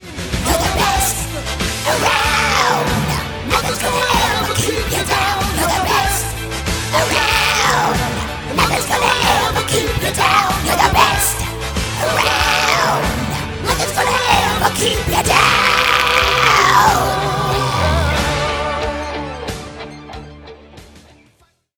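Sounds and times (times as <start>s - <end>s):
death metal music: 0.1s - 21.0s.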